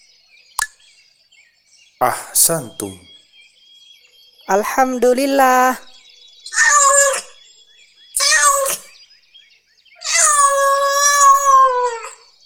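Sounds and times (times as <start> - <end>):
speech: 2.0 - 3.1, 4.5 - 5.9
cat meowing: 6.5 - 7.3, 8.2 - 8.9, 10.0 - 12.2.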